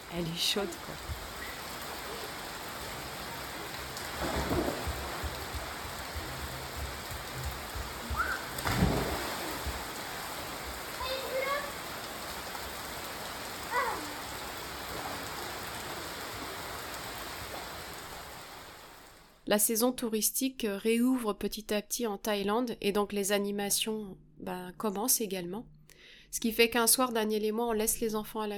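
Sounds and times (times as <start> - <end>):
steady rain: 0.0 - 19.4
speech: 0.1 - 1.2, 19.5 - 28.5
faint calls: 8.0 - 8.6.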